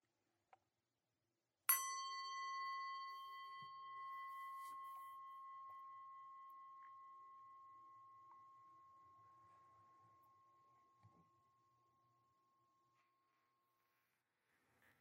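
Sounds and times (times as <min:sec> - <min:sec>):
single meditation bell struck in a quiet room: 0:01.7 - 0:13.2.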